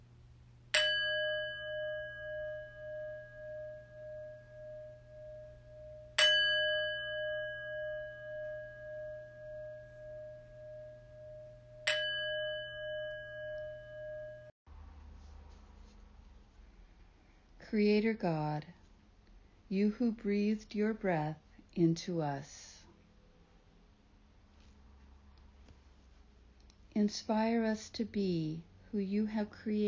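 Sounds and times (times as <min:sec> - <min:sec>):
faint low hum: 0:00.0 - 0:29.8
meditation chimes ringing: 0:00.7 - 0:14.5
speech: 0:17.7 - 0:18.8, 0:19.7 - 0:22.6, 0:27.0 - 0:29.8.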